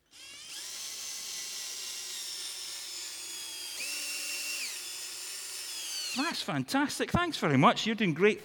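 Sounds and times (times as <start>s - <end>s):
old power drill whirring: 0.0s - 6.3s
speech: 6.2s - 8.4s.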